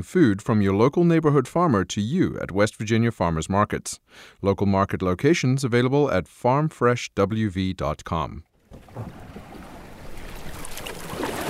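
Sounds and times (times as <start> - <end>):
speech: 0.0 - 9.2
paddling a small boat along a river: 8.6 - 11.4
continuous water wash: 8.7 - 11.4.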